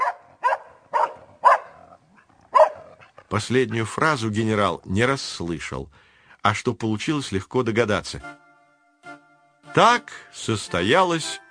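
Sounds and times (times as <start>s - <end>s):
dog barking: 0.0s - 3.2s
speech: 3.3s - 8.4s, 9.8s - 11.4s.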